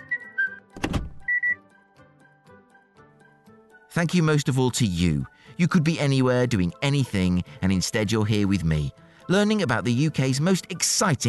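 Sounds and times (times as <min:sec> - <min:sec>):
man whistling short bright notes: 0:00.0 - 0:01.7
brief broadband thump or clunk: 0:00.8 - 0:01.3
speech: 0:04.0 - 0:11.2.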